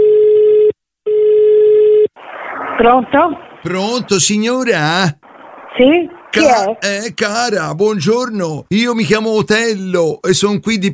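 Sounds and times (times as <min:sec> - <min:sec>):
telephone ringing tone as a call goes out: 0:00.0 - 0:02.1
speech: 0:02.8 - 0:05.2, 0:05.8 - 0:10.9.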